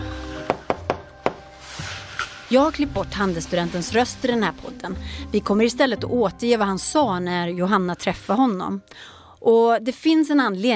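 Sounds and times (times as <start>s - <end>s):
firm knocks on an apartment door: 0.5s - 1.4s
speech: 2.5s - 10.7s.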